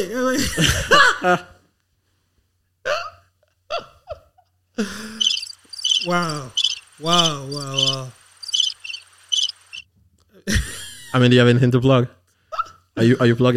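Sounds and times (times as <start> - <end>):
speech: 0.0 - 1.5, 4.8 - 5.1, 6.0 - 8.2, 11.1 - 12.2, 13.0 - 13.5
crickets chirping as silence gag effect: 4.9 - 9.8.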